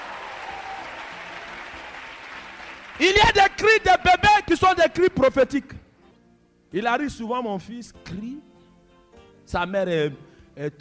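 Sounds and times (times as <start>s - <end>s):
church congregation applauding: 0.0s - 3.6s
speech: 3.0s - 5.8s, 6.7s - 8.5s, 9.5s - 10.8s.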